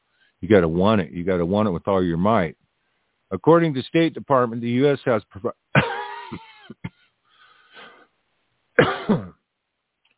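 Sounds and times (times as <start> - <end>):
speech: 0.4 - 2.6, 3.3 - 6.8, 9.1 - 9.3
person coughing with a throat-clearing rasp: 5.8 - 7.0, 8.8 - 9.4.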